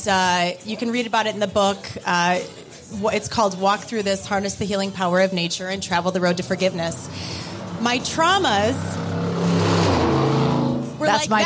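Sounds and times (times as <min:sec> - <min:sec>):
speech: 0:00.0 - 0:09.7, 0:11.0 - 0:11.4
muscle car engine revving: 0:05.4 - 0:11.4.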